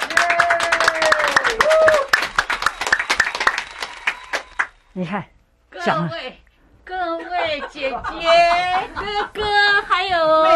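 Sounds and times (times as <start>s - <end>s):
small group clapping in a radio broadcast studio: 0.0s - 4.8s
speech: 5.0s - 10.5s.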